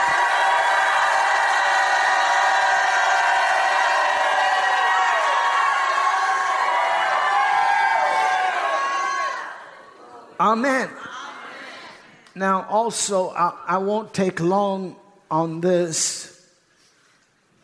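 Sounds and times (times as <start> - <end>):
large audience at a sermon shouting and cheering: 0.0 - 10.4
speech: 10.4 - 11.1, 12.4 - 16.3.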